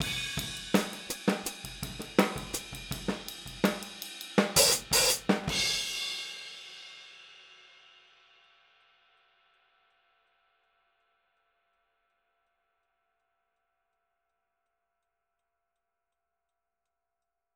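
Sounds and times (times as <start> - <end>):
hi-hat outro pattern in boogaloo style: 0.0 - 5.9.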